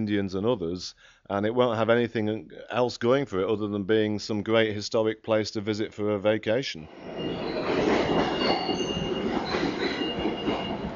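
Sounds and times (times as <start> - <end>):
speech: 0.0 - 7.5
New York City subway train rumbling along rails: 6.8 - 10.9
subway train wheel squeals: 6.9 - 10.9.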